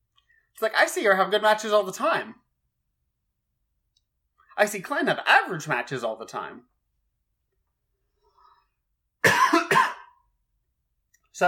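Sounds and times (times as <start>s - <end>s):
speech: 0.6s - 2.4s, 4.6s - 6.7s
harsh coughs: 9.2s - 10.2s.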